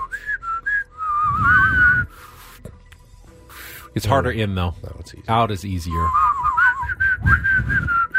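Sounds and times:
person whistling through the nose: 0.0s - 2.6s, 6.0s - 8.1s
speech: 4.0s - 6.3s.

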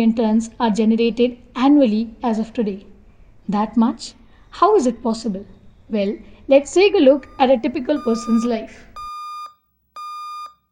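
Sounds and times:
speech: 0.0s - 2.9s, 3.5s - 8.9s
cell phone alarm clock ringing: 7.2s - 10.7s.

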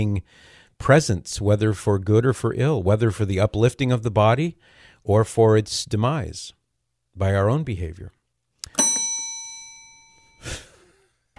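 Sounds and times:
speech: 0.0s - 6.6s, 7.2s - 8.2s
single bright bell ding: 8.7s - 10.6s.

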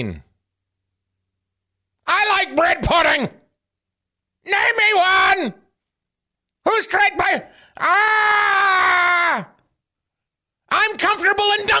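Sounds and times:
speech: 0.0s - 0.3s, 2.1s - 3.4s, 4.4s - 5.6s, 6.6s - 9.5s, 10.7s - 11.7s
person screaming: 7.8s - 9.6s.

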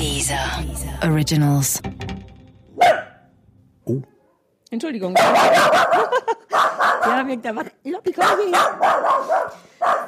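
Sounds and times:
speech: 0.2s - 2.0s, 3.9s - 4.1s, 4.7s - 10.0s
two dogs scuffling and barking in the next room: 5.2s - 7.4s, 8.1s - 10.0s.

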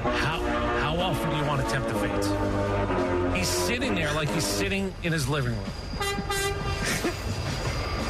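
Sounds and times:
train horn blaring: 0.0s - 4.8s, 5.9s - 6.8s
passing train rumbling: 0.0s - 8.0s
speech: 1.1s - 6.3s.

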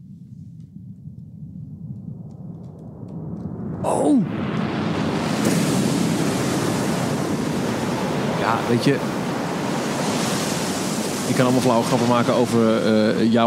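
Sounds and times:
person murmuring: 3.8s - 4.3s
speech: 3.8s - 4.6s, 8.6s - 9.2s, 11.3s - 13.4s
crashing ocean waves in a film trailer: 3.8s - 13.4s.

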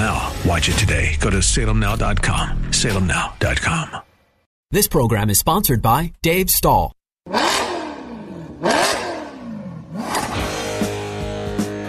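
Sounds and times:
speech: 0.4s - 4.1s, 4.7s - 7.6s
engine revving hard and settling into idle: 7.2s - 11.8s.

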